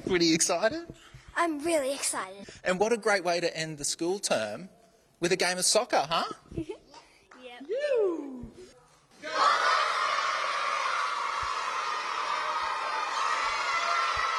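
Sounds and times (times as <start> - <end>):
speech: 0.1 - 6.7
crowd of schoolchildren cheering: 9.2 - 14.3.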